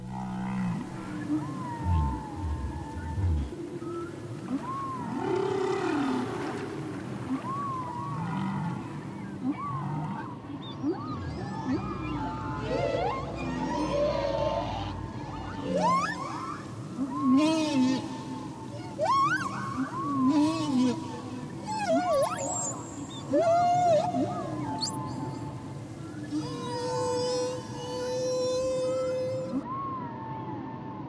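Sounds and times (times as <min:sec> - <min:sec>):
steady low rumble of deep water: 0:00.0 - 0:29.3
whales singing in sliding moans and chirping calls: 0:00.0 - 0:29.8.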